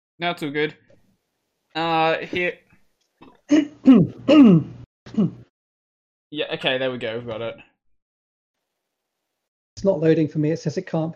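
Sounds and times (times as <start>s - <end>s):
speech: 0.2s - 0.8s, 1.8s - 2.6s, 3.2s - 5.4s, 6.3s - 7.7s, 9.8s - 11.1s
person coughing in rough bursts: 3.2s - 5.4s
person clearing throat: 3.2s - 5.5s.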